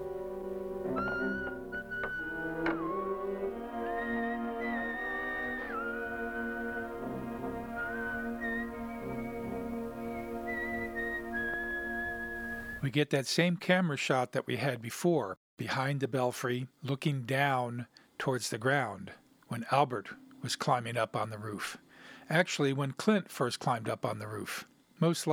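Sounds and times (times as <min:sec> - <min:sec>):
soft sustained instrumental backing: 0:00.0 - 0:12.8
person whistling a slow folk tune: 0:00.9 - 0:12.8
speech: 0:12.8 - 0:25.3.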